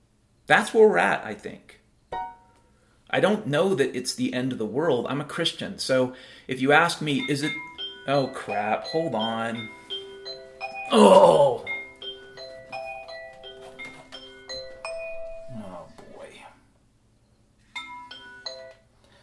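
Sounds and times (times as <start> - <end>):
speech: 0.5 - 1.8, 3.1 - 9.8, 10.9 - 11.7
phone alarm melodic chime of bright electronic tones: 7.1 - 11.0, 11.6 - 15.8, 17.2 - 18.8
person exclaiming in surprise: 10.9 - 11.7.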